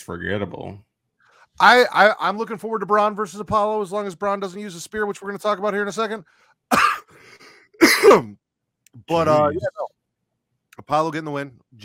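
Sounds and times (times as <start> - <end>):
speech: 0.0 - 0.9, 1.6 - 7.2, 7.8 - 9.9, 10.9 - 11.8
faint wheezy breath: 6.2 - 7.8
person coughing harshly: 6.7 - 7.2, 7.8 - 8.3.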